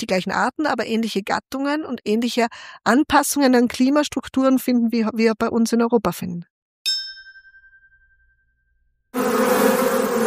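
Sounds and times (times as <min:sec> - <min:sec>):
speech: 0:00.0 - 0:06.5
ringing metallic chime: 0:06.9 - 0:08.9
many bees buzzing together in a hive: 0:09.2 - 0:10.2.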